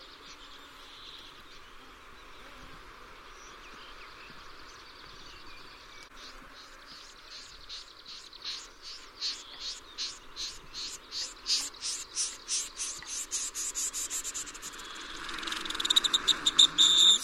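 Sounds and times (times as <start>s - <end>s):
pin-tailed snipe calling: 7.3s - 17.2s.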